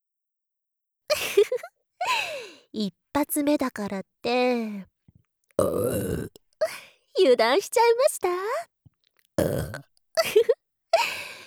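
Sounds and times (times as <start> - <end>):
speech: 2.7 - 4.9, 5.6 - 8.7, 9.4 - 11.2
person burping loudly: 5.6 - 6.4, 9.4 - 9.8.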